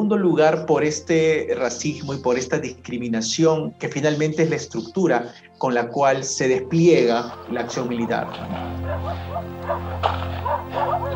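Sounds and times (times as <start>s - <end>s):
speech: 0.1s - 10.2s
several dogs barking and yipping: 7.2s - 11.1s.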